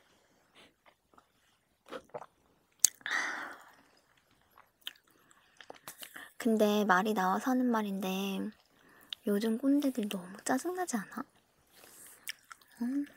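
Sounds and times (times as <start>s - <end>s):
chewing drinking snacks at a drinks gathering: 0.8s - 6.4s, 11.3s - 13.1s
speech: 6.4s - 8.6s, 9.2s - 11.4s, 12.8s - 13.1s.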